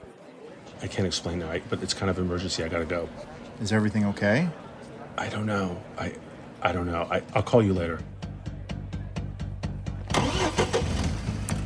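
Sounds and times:
speech: 0:00.8 - 0:08.1
car engine cranking, starting and revving: 0:10.0 - 0:11.6.

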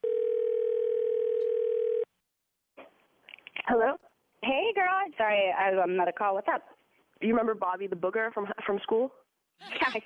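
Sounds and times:
telephone tone while calling someone back: 0:00.0 - 0:02.1
speech: 0:03.7 - 0:10.0
laughter: 0:09.6 - 0:10.0.

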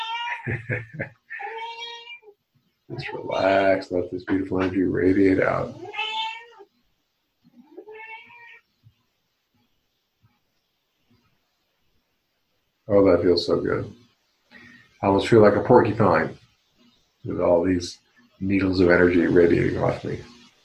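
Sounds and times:
cat chirp: 0:00.0 - 0:00.5, 0:05.7 - 0:06.7, 0:07.6 - 0:08.7
cat meowing: 0:00.0 - 0:00.5, 0:01.3 - 0:04.7, 0:05.7 - 0:06.7, 0:07.6 - 0:08.7
laughter: 0:00.4 - 0:01.2
speech: 0:00.4 - 0:01.2, 0:02.9 - 0:06.0, 0:12.9 - 0:14.0, 0:15.0 - 0:16.4, 0:17.2 - 0:20.3.

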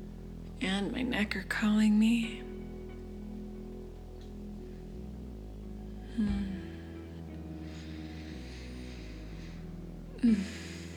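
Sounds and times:
speech: 0:00.6 - 0:02.6, 0:10.2 - 0:10.6
deep breathing while stretching: 0:04.0 - 0:10.9.

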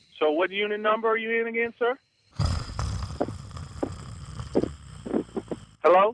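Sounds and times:
speech: 0:00.2 - 0:02.1, 0:05.8 - 0:06.1
snoring through a phone line: 0:00.2 - 0:06.1.

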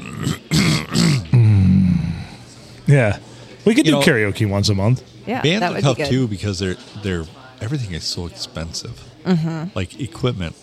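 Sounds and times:
voice imitating throat clearing: 0:00.0 - 0:02.4
speech: 0:02.9 - 0:10.6.

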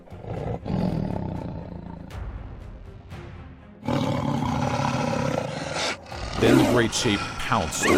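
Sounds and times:
tiger growling and roaring: 0:00.0 - 0:02.2, 0:03.8 - 0:07.9
speech: 0:06.4 - 0:07.9.

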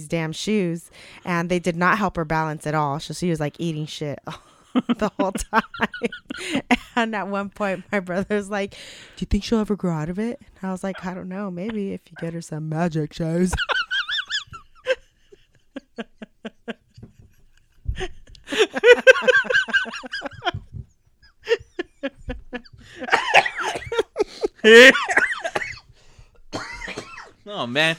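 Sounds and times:
speech: 0:00.0 - 0:13.9, 0:16.0 - 0:16.8, 0:18.0 - 0:20.6, 0:21.5 - 0:25.3, 0:27.5 - 0:27.9
laughter: 0:04.7 - 0:07.9, 0:13.5 - 0:20.8, 0:21.4 - 0:25.8
person gasping between coughs: 0:22.7 - 0:23.1
person in a prolonged coughing fit: 0:23.1 - 0:24.1, 0:24.7 - 0:25.9, 0:26.5 - 0:27.4.

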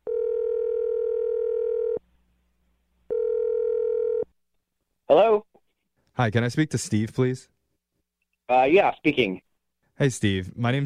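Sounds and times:
telephone ringback tone: 0:00.1 - 0:02.0, 0:03.1 - 0:04.3
speech: 0:06.2 - 0:07.6, 0:08.5 - 0:10.8.

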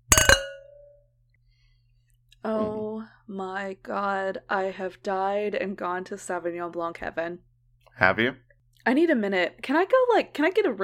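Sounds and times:
glasses of white wine clinking together in a toast: 0:00.0 - 0:01.0
speech: 0:03.3 - 0:10.8.

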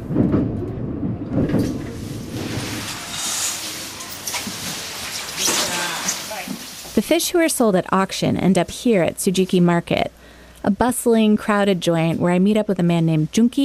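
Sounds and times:
rumbling ride noise inside a moving train: 0:00.0 - 0:07.0
sliding doors thudding: 0:00.0 - 0:07.0
speech: 0:07.0 - 0:13.6.

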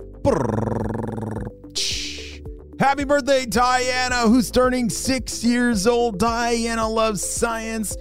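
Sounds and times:
speech: 0:00.2 - 0:00.6, 0:02.8 - 0:07.9
voice imitating a drum roll: 0:00.2 - 0:01.5.

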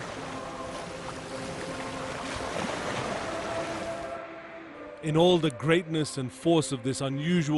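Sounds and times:
Atlantic Ocean waves breaking on the Namib Desert coast: 0:00.0 - 0:05.0
speech: 0:05.0 - 0:07.5.

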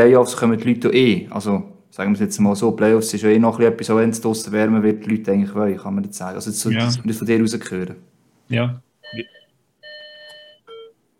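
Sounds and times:
speech: 0:00.0 - 0:09.4
electronic doorbell chime ringing at home: 0:09.0 - 0:11.0.

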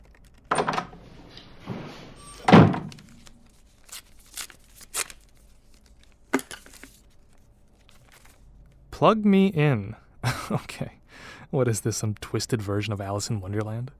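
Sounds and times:
softer knocks and shuffles: 0:01.0 - 0:02.2
door pushed shut with a solid thud: 0:01.7 - 0:03.0
speech: 0:09.0 - 0:13.9.

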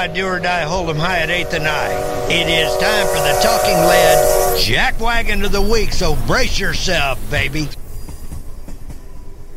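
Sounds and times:
speech: 0:00.0 - 0:07.8
train rumbling along the rails: 0:00.0 - 0:09.5.

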